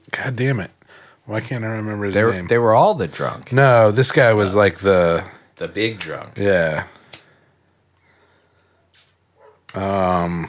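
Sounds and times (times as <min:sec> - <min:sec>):
speech: 0:00.2 - 0:07.0, 0:09.7 - 0:10.4
faint rustles: 0:08.0 - 0:09.6
dog barking with a sustained harmonic yelp: 0:08.8 - 0:09.7.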